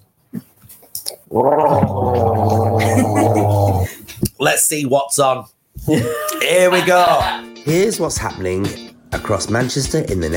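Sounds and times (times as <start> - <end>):
brief throaty sounds: 0.3 - 4.3
person gargling water as a vagal toning exercise: 1.2 - 4.0
speech: 1.3 - 2.4, 4.5 - 10.3
laughter: 2.7 - 4.0, 5.9 - 7.4.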